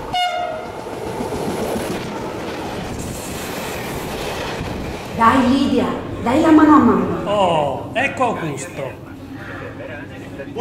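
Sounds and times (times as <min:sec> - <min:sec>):
train horn blast: 0:00.0 - 0:00.8
rumble of train cars rolling into the station in Piazza Matteotti Cagliari: 0:00.0 - 0:10.5
speech: 0:05.2 - 0:09.0.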